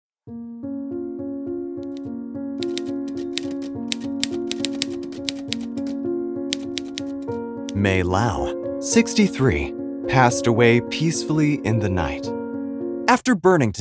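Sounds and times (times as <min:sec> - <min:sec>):
speech: 0:00.3 - 0:00.5, 0:07.8 - 0:12.4, 0:13.1 - 0:13.7
typewriter keys clacking: 0:01.8 - 0:02.0, 0:02.6 - 0:07.4.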